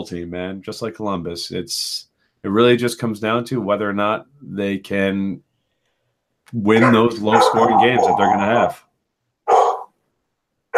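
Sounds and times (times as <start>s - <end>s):
speech: 0.0s - 5.5s, 6.5s - 8.9s
dog barking: 6.8s - 8.8s, 9.5s - 10.0s.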